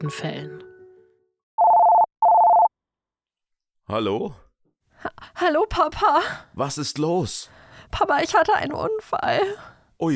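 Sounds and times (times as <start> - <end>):
speech: 0.0 - 0.7, 3.9 - 4.4, 5.0 - 10.1
electronic telephone tones at the start of a phone call: 1.6 - 2.7.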